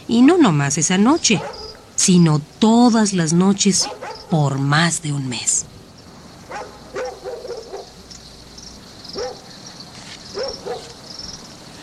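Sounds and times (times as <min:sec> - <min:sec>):
nighttime chorus of chirping insects: 0:00.0 - 0:11.8
speech: 0:00.1 - 0:05.8
dogs barking at night: 0:01.1 - 0:02.0, 0:03.7 - 0:04.5, 0:06.4 - 0:08.3, 0:08.9 - 0:11.4.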